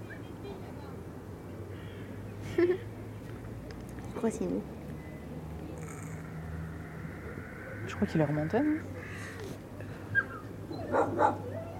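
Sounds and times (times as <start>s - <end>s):
speech: 2.6s - 3.0s, 4.2s - 4.8s, 8.0s - 9.0s, 10.9s - 11.5s
dog barking: 10.8s - 11.5s.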